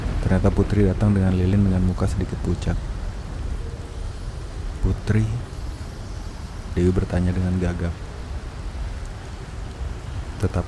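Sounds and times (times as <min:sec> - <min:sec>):
thunder rumbling: 0:00.0 - 0:06.0
rain: 0:00.0 - 0:10.6
speech: 0:00.3 - 0:03.0, 0:04.8 - 0:05.5, 0:06.8 - 0:08.0, 0:10.4 - 0:10.6.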